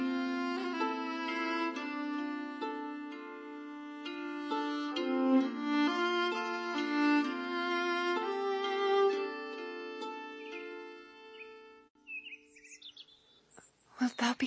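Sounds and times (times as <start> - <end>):
held organ-like musical chord: 0.0 - 11.9
bird chirps and twitters at dawn: 10.4 - 14.4.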